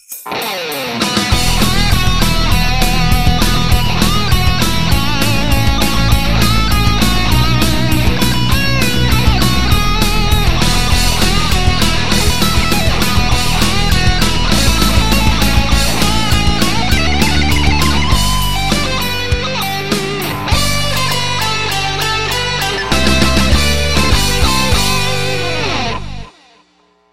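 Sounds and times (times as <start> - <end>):
heavy metal music: 0.0 - 26.4.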